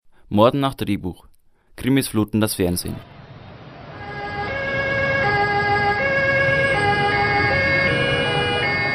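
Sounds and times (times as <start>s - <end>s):
speech: 0.3s - 3.1s
road traffic rumble: 2.9s - 8.9s
emergency vehicle two-tone siren: 3.0s - 8.9s.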